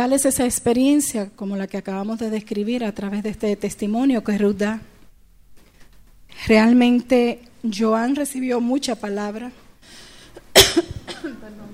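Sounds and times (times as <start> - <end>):
speech: 0.0 - 4.9, 6.3 - 10.0
slightly hoarse woman coughing: 10.5 - 11.6.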